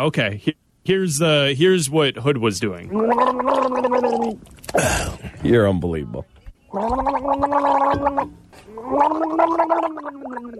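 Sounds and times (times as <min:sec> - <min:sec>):
speech: 0:00.0 - 0:10.5
gargling sound effect: 0:02.9 - 0:05.2, 0:06.7 - 0:10.5.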